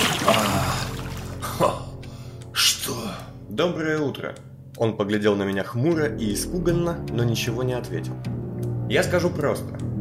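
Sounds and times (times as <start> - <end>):
glass of murky water poured onto a wounded man's head: 0.0 - 1.4
speech: 3.6 - 9.8.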